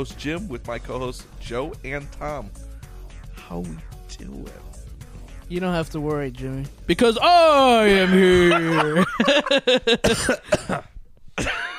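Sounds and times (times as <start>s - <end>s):
speech: 0.0s - 2.7s, 3.5s - 4.8s, 5.5s - 10.9s
laughter: 7.8s - 10.3s
fit of rapid harsh coughs: 10.0s - 11.7s.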